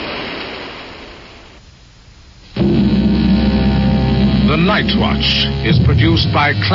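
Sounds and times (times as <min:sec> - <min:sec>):
train thundering past: 0:02.6 - 0:06.7
speech: 0:04.8 - 0:06.7.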